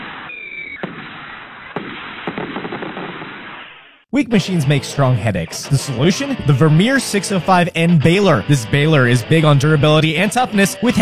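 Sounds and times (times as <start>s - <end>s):
firework whistle: 0.0s - 4.0s
crackling firework pops: 0.0s - 4.1s
speech: 4.1s - 10.9s.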